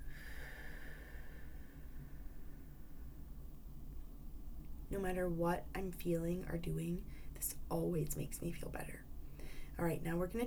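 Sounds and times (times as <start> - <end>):
deep breathing in and out during a relaxation break: 0.0 - 3.4, 9.2 - 9.8
speech: 4.9 - 9.1, 9.8 - 10.4.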